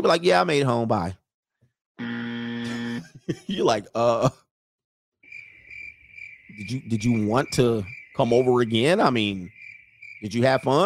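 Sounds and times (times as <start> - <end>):
speech: 0.0 - 1.2, 2.0 - 4.4, 6.5 - 9.6, 10.2 - 10.8
laughter: 2.6 - 4.3
crickets chirping: 5.2 - 10.8.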